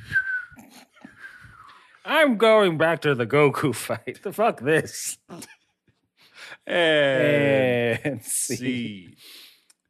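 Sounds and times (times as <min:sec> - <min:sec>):
person whistling a steady thin tone: 0:00.0 - 0:02.0
speech: 0:02.0 - 0:05.6, 0:06.5 - 0:09.5.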